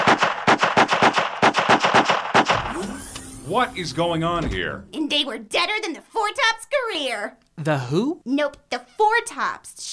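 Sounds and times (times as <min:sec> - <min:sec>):
rapid automatic gunshots: 0:00.0 - 0:02.7
speech: 0:03.5 - 0:09.9.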